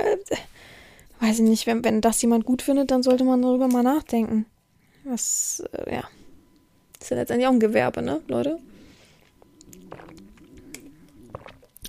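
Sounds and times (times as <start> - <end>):
speech: 0.1 - 0.5, 1.2 - 6.2, 7.0 - 8.7
quiet low stomach rumble gurgling: 7.9 - 11.8.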